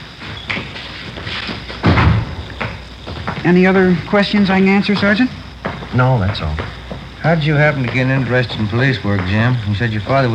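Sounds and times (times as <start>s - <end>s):
door opened and pushed shut: 1.4s - 3.3s
speech: 3.4s - 10.3s.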